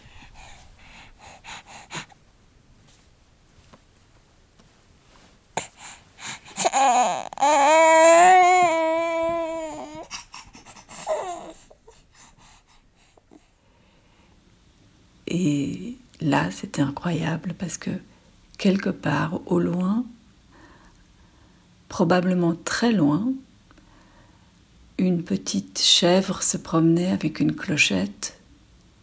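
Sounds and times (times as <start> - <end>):
sleeping baby voiced whimpering sigh: 0.0 - 2.2, 5.6 - 13.5
sleeping baby breathing softly with faint snuffles: 0.0 - 14.4
speech: 16.6 - 20.2, 22.0 - 23.4, 25.3 - 28.4.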